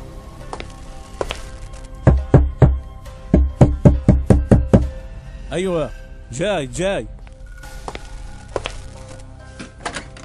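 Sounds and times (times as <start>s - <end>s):
knocking on a door: 2.1s - 2.8s, 3.4s - 4.9s
speech: 5.5s - 7.2s.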